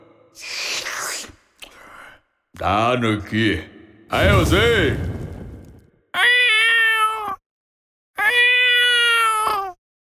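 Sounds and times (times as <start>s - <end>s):
speech: 2.6s - 5.2s
human voice imitating a cat meowing: 6.2s - 7.4s, 8.2s - 9.8s.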